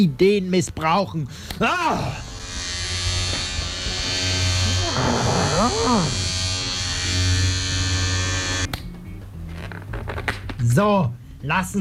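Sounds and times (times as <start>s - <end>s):
speech: 0.0s - 2.3s, 5.0s - 6.3s, 10.6s - 11.7s
electric razor buzzing: 2.0s - 8.7s.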